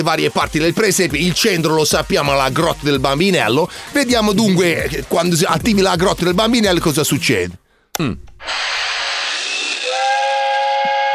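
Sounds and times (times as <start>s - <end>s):
speech: 0.0s - 8.8s
toy train steam whistle on a nativity scene: 8.5s - 11.1s.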